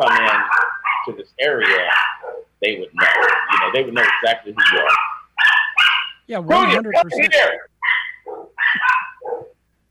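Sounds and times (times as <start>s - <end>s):
owner scolding his dogs: 0.0s - 5.1s, 6.3s - 7.7s
dog barking: 0.0s - 6.7s, 7.8s - 9.6s
speech: 1.1s - 5.1s, 6.3s - 7.7s.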